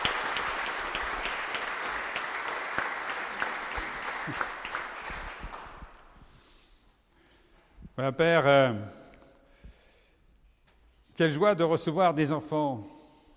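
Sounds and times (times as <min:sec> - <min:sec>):
congregation applauding: 0:00.0 - 0:06.2
speech: 0:08.0 - 0:09.0, 0:11.2 - 0:13.0.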